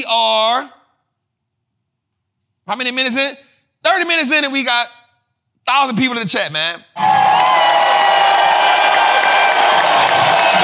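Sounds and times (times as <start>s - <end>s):
speech: 0.0s - 0.8s, 2.7s - 5.0s, 5.6s - 7.5s
crowd applauding: 7.0s - 10.6s.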